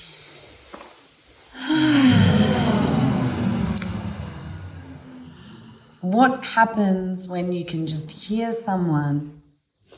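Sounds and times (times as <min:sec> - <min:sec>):
group of people taking a deep breath together: 0:01.4 - 0:06.0
speech: 0:06.1 - 0:09.9.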